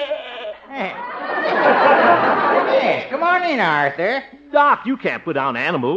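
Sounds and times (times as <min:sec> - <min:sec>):
goat bleating: 0:00.0 - 0:01.0
laughter: 0:00.0 - 0:03.4
speech: 0:03.2 - 0:05.9.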